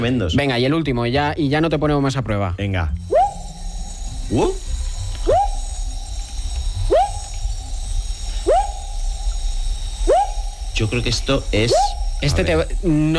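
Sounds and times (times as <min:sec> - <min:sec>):
speech: 0:00.0 - 0:03.1, 0:04.3 - 0:04.7, 0:10.8 - 0:13.1
frog calling with rising whooping upsweeps: 0:03.0 - 0:13.1
steady low rumble of noise: 0:03.0 - 0:13.1.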